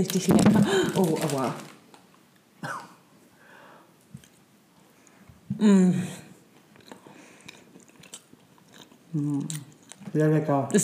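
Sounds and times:
speech: 0:00.0 - 0:01.7, 0:05.6 - 0:06.2, 0:09.2 - 0:10.8
person biting and chewing a chocolate cookie: 0:06.5 - 0:10.1.

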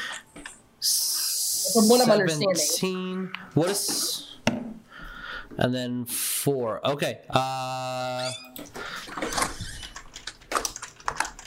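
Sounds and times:
speech: 0:01.7 - 0:04.7, 0:05.5 - 0:09.5
loud door creaking open: 0:08.0 - 0:10.3.

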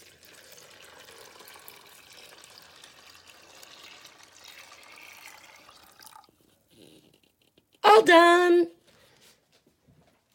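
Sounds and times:
water pouring into aluminum pot of split peas: 0:00.0 - 0:06.6
speech: 0:08.0 - 0:08.7.

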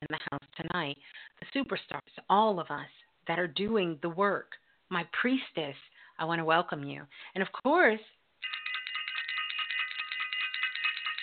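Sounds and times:
speech: 0:00.1 - 0:08.6
bright bell ringing rapidly: 0:08.4 - 0:11.2.

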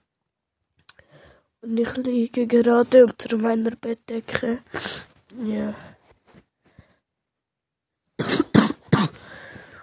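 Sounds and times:
speech: 0:01.6 - 0:05.9
person coughing harshly: 0:08.2 - 0:09.3.

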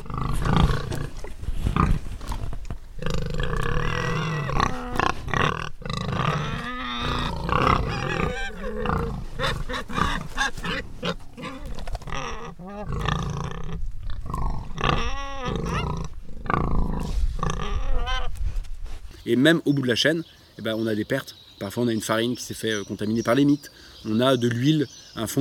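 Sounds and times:
group of farm pigs grunting, snorting and squealing while feeding on leftover produce: 0:00.0 - 0:18.4
speech: 0:19.3 - 0:25.3.

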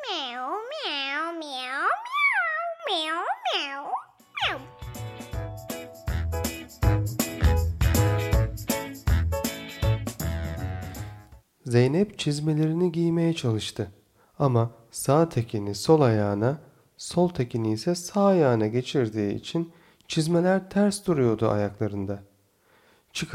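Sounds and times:
cat meowing happily: 0:00.0 - 0:04.7
lively music with bouncy beat: 0:04.2 - 0:11.4
speech: 0:11.7 - 0:22.3, 0:23.1 - 0:23.3.

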